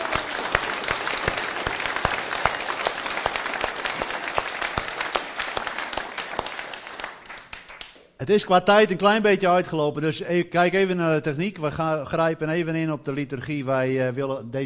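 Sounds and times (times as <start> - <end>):
audience applause at a church service: 0.0 - 8.0
speech: 8.2 - 14.6.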